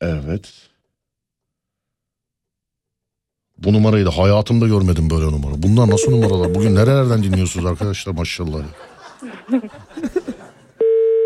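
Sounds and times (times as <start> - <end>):
speech: 0.0 - 0.7, 3.6 - 10.2
telephone ringing loudly: 5.7 - 7.5, 10.8 - 11.2
laughter: 5.7 - 10.8.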